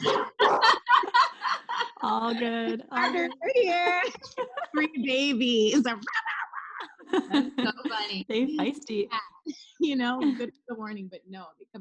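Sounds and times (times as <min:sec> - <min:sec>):
dogs barking: 0:00.0 - 0:01.8
laughter: 0:00.0 - 0:09.6, 0:10.2 - 0:10.5
speech: 0:02.1 - 0:06.2, 0:07.1 - 0:11.7.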